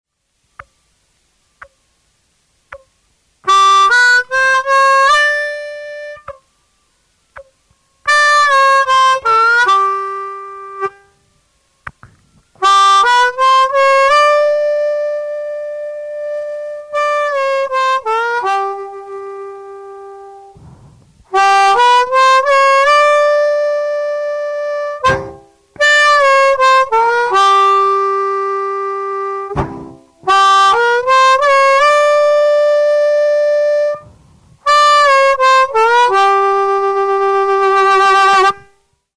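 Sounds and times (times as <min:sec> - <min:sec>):
garmoshka accordion playing a blues lick: 0:03.5 - 0:06.4, 0:08.1 - 0:11.0, 0:12.6 - 0:20.6, 0:21.3 - 0:38.7.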